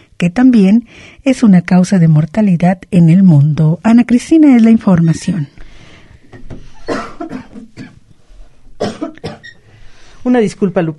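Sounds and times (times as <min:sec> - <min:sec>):
speech: 0:00.2 - 0:05.6, 0:10.2 - 0:10.9
person coughing: 0:06.8 - 0:08.0, 0:08.8 - 0:09.6.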